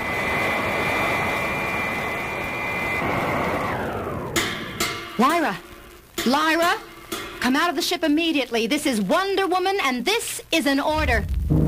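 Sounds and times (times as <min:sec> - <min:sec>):
robot plane engine roaring with a high whine: 0:00.0 - 0:06.0
brief sharp burst of noise: 0:00.0 - 0:07.4
speech: 0:05.2 - 0:11.6.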